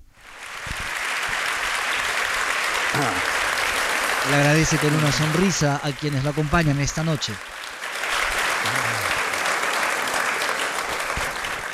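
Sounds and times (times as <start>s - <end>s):
audience applause at the Swedish Academy: 0.2s - 11.7s
speech: 4.2s - 7.5s.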